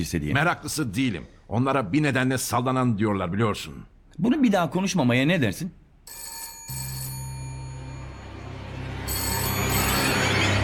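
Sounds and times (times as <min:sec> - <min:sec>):
speech: 0:00.0 - 0:06.8
telephone ringing with electronic tone: 0:06.1 - 0:10.6.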